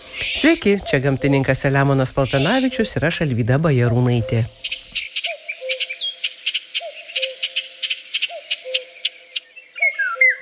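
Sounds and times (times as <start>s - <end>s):
continuous high pulsing chirr of insects: 0.0s - 10.4s
golden oriole whistling short fluty phrases: 0.0s - 10.4s
speech: 0.4s - 4.7s.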